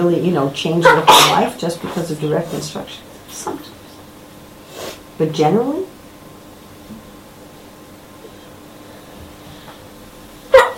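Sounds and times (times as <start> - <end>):
speech: 0.0 - 3.8, 5.2 - 5.9
soft steady room hum: 0.0 - 10.7
person sneezing: 0.8 - 1.5.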